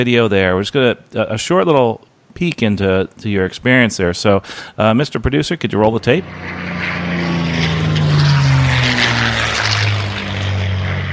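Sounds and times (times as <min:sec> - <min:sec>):
speech: 0:00.0 - 0:07.3
F-16 fighter jet engine roar heard from the cockpit: 0:05.0 - 0:11.1.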